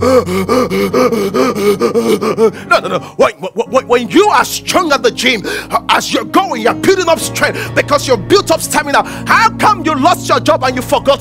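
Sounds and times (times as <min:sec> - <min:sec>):
voice imitating heavy panting after running: 0:00.0 - 0:03.3
speech: 0:00.2 - 0:01.4, 0:02.2 - 0:11.1.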